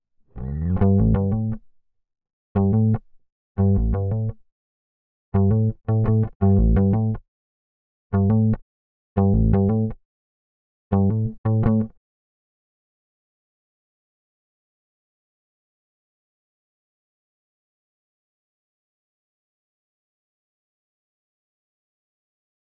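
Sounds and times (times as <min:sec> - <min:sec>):
bass guitar in C: 0:00.3 - 0:01.7, 0:02.6 - 0:04.4, 0:05.4 - 0:07.2, 0:08.2 - 0:08.6, 0:09.2 - 0:10.0, 0:10.9 - 0:12.0.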